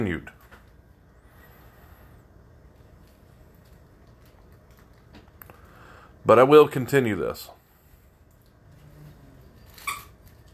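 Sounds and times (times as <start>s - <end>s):
speech: 0.0s - 0.4s, 6.3s - 7.6s
quiet room hum: 0.0s - 10.5s
squeaky toy squeak from dog stepping on it: 9.6s - 10.2s.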